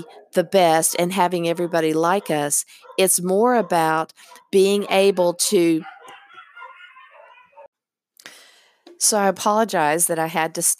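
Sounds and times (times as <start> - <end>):
speech: 0.0 - 6.0, 9.0 - 10.7
dogs barking and yipping in the background: 0.0 - 7.7.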